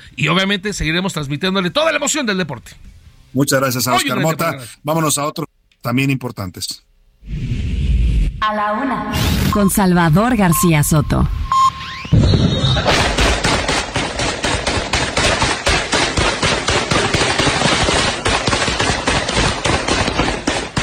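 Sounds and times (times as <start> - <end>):
speech: 0.1 - 7.6, 8.4 - 11.4
electronic beep: 9.3 - 12.9
automatic gunfire: 12.9 - 20.8.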